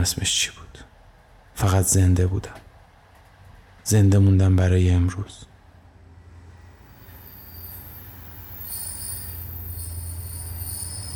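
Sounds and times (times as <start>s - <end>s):
speech: 0.0s - 0.6s, 1.6s - 2.6s, 3.9s - 5.5s
train braking hard with wheels squealing: 6.4s - 11.1s.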